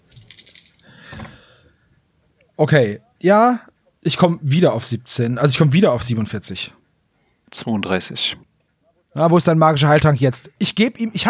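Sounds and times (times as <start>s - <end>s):
dice rattling on a hard surface: 0.1s - 1.3s
speech: 2.6s - 6.8s, 7.6s - 8.5s, 9.2s - 11.2s.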